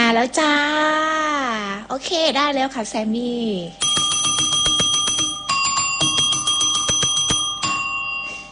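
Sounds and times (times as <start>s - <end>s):
speech: 0.2s - 1.1s, 1.9s - 4.0s
bright metallic bell ringing: 3.8s - 8.5s.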